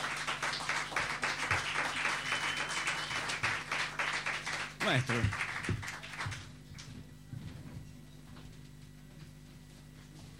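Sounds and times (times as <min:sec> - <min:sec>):
audience applause at an evening poetry event welcoming a musician: 0:00.0 - 0:06.5
speech: 0:04.9 - 0:05.8.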